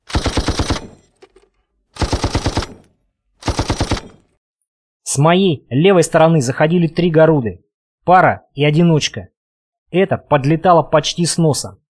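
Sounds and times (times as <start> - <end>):
MG-30 machine gun firing rapid bursts: 0.0 - 1.4, 2.0 - 4.4
speech: 5.1 - 9.3, 9.9 - 11.8.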